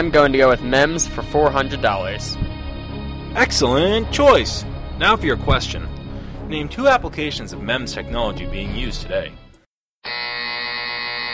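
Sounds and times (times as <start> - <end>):
speech: 0.0 - 2.5, 3.3 - 5.9, 6.5 - 9.4
game show contestant electronic buzzer: 10.0 - 11.3.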